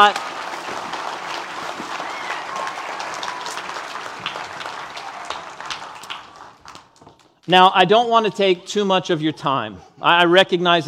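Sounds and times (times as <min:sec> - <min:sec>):
speech: 0:00.0 - 0:00.3, 0:07.5 - 0:10.8
crowd applauding for children: 0:00.0 - 0:07.5.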